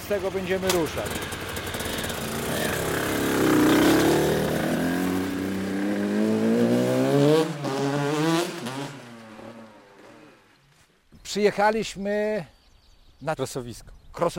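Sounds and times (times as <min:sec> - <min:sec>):
off-road motorcycle engine running and revving: 0:00.0 - 0:10.6
speech: 0:00.1 - 0:01.4, 0:11.4 - 0:12.6, 0:13.2 - 0:14.3.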